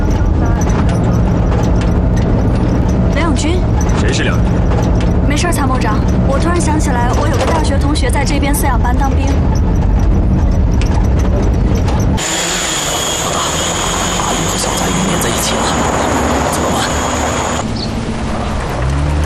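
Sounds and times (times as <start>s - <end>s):
drone high-pitched whine at very low altitude: 0.0s - 19.0s
rushing engine-like noise: 0.0s - 19.2s
speech: 6.8s - 10.0s.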